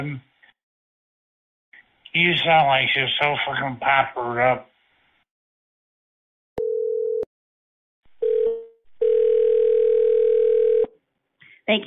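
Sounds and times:
speech: 0:00.0 - 0:00.3, 0:02.1 - 0:04.7, 0:11.7 - 0:11.8
telephone line tones after a call is disconnected: 0:06.6 - 0:07.3, 0:08.2 - 0:10.9.

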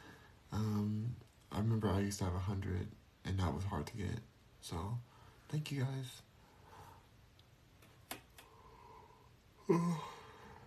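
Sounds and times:
speech: 0:01.6 - 0:06.3, 0:09.7 - 0:10.2
person yawning: 0:09.6 - 0:10.6.

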